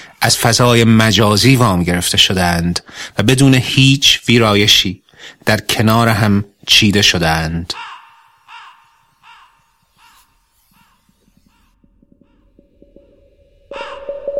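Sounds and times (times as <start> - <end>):
speech: 0.2 - 7.9
crow cawing harshly: 7.8 - 14.3.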